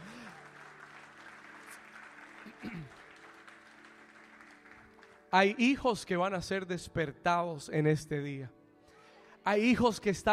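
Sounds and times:
audience applauding: 0.0s - 5.6s
speech: 5.3s - 8.6s, 9.5s - 10.3s.

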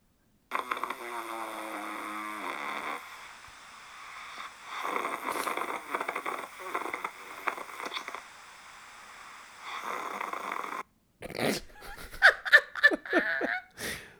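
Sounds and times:
recorded choppy stuttering snoring: 0.5s - 8.5s, 9.6s - 11.7s
laughter: 11.8s - 13.7s.

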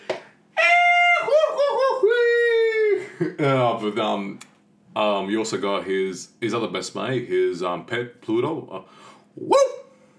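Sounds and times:
person imitating a goofy cartoon dog's holler: 0.6s - 3.6s
laughter: 1.2s - 3.7s
speech: 3.2s - 9.7s.

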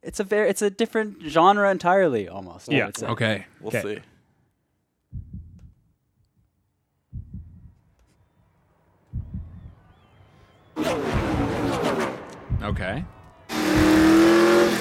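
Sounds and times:
speech: 0.1s - 4.1s, 12.6s - 13.2s
deep booming heartbeat thumps in a car-racing film trailer: 5.1s - 5.8s, 7.1s - 7.8s, 9.1s - 9.8s, 11.0s - 11.8s, 12.4s - 14.8s.

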